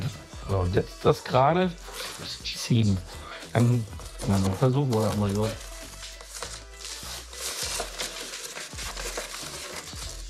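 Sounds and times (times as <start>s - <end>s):
speech: 0.5s - 5.6s
plastic film tearing while cut with knife: 3.7s - 10.2s.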